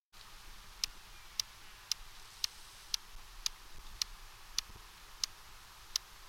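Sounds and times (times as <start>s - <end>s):
Stethophyma grossum leg-flicking: 0.2s - 6.1s.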